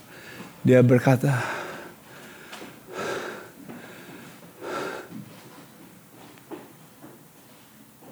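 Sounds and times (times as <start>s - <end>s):
speech: 0.6s - 1.6s
slow deep breaths exhaled as airy whooshes: 1.3s - 5.3s.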